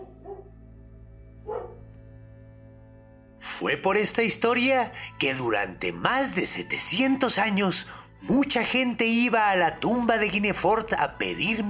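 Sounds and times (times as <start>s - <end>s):
dog barking: 0.0s - 0.6s, 1.4s - 1.9s
steady low hum: 0.0s - 4.0s
speech: 3.6s - 11.6s.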